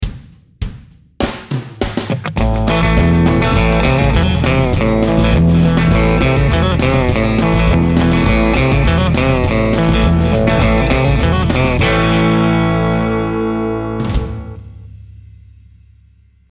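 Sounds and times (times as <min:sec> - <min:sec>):
country music lick: 0:01.8 - 0:14.6.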